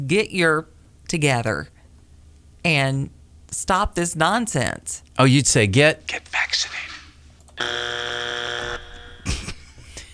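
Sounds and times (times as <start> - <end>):
speech: 0.0 - 1.7, 2.6 - 6.9, 7.6 - 8.0
loud harsh buzzer: 7.6 - 9.3.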